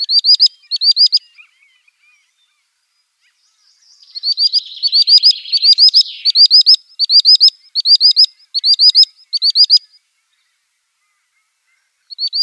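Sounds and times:
male common sandpiper display call: 0.0s - 2.3s, 3.2s - 10.1s, 12.1s - 12.4s.

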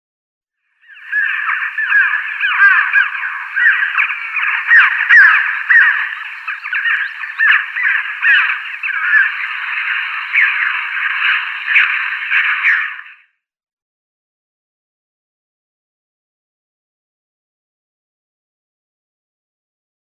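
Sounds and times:
chough nestlings calling: 0.9s - 13.1s.

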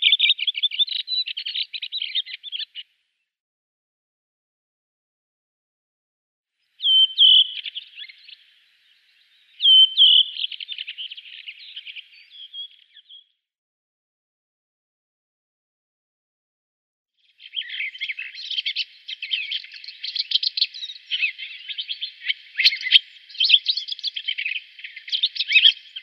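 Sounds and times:
redwing song with scratchy chattering twitter and whistled notes: 0.0s - 2.8s, 6.8s - 13.2s, 17.4s - 26.0s.

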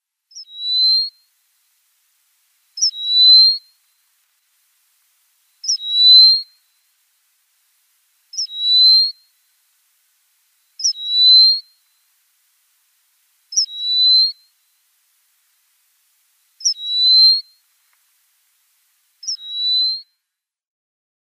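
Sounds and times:
bar-tailed lark song: 0.3s - 1.2s, 2.8s - 3.7s, 5.6s - 6.6s, 8.3s - 9.3s, 10.8s - 11.8s, 13.5s - 14.5s, 16.6s - 17.6s, 19.2s - 20.0s.

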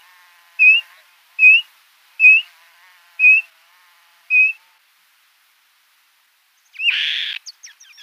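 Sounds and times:
Black-shouldered Kite harsh rasping call: 0.6s - 1.6s, 2.2s - 2.5s, 3.2s - 3.5s
Black-shouldered Kite calling with short clear whistled notes: 0.6s - 2.5s, 3.2s - 3.5s, 4.3s - 4.6s.

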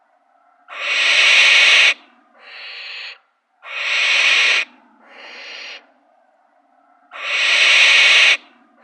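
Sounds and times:
downy young barn owl begging hisses: 0.7s - 5.8s, 7.1s - 8.4s.

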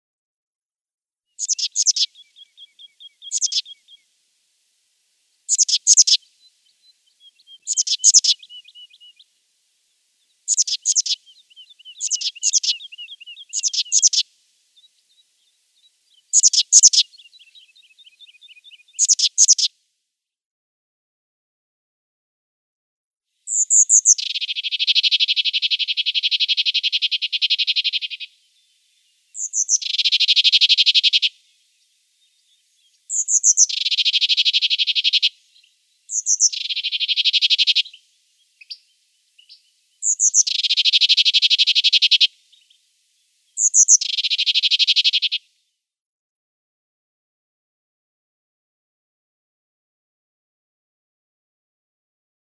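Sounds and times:
Sombre Tit calls: 1.4s - 4.1s, 5.5s - 9.3s, 10.2s - 19.7s, 23.5s - 42.9s, 43.5s - 45.4s.

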